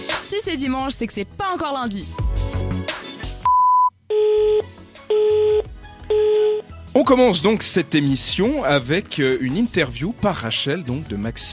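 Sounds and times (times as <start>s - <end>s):
speech: 0.3s - 3.0s, 7.0s - 11.5s
low electronic tones: 3.5s - 6.6s
voicemail beep: 3.5s - 6.6s.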